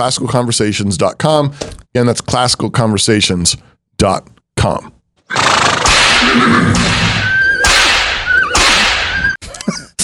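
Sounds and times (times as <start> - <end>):
speech: 0.0 - 5.4, 6.2 - 7.0
horse whinnying in short wavering high cries: 5.3 - 9.4.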